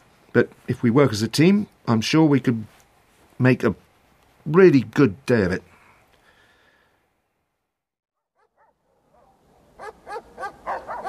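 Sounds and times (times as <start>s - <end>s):
speech: 0.4s - 2.8s, 3.4s - 3.8s, 4.4s - 5.7s
dog yipping: 8.4s - 11.0s.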